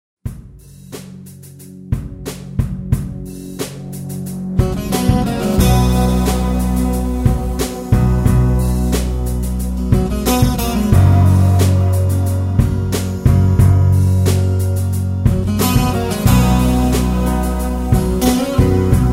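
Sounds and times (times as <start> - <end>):
acoustic easy-listening music: 0.7 - 19.1.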